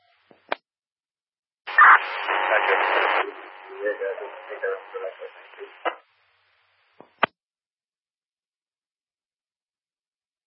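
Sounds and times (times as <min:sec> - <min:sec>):
garbled radio transmission: 0:01.7 - 0:06.0
voice over radio: 0:01.7 - 0:06.0
harsh radio static: 0:01.7 - 0:07.3.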